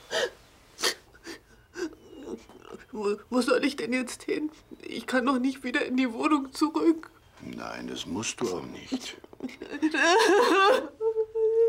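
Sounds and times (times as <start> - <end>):
girl crying and whimpering: 0.0 - 2.9, 9.5 - 11.6
speech: 3.0 - 11.0.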